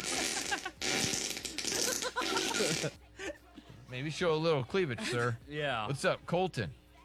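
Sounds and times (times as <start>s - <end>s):
fart sound effect: 0.0s - 3.0s
laughter: 1.7s - 3.6s, 4.6s - 5.4s
speech: 2.6s - 3.1s, 3.9s - 6.8s.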